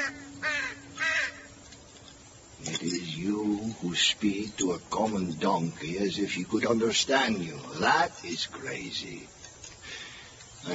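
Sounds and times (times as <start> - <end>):
crow cawing from a tree: 0.0 - 1.6
faint steady hum: 0.0 - 10.7
speech: 2.8 - 9.4.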